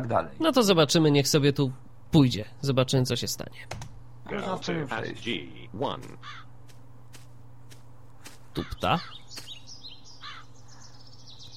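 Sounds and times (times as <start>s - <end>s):
speech: 0.0s - 6.4s, 8.6s - 9.4s
steady low hum: 0.0s - 11.5s
birds chirping and trilling in a forest: 6.1s - 11.5s.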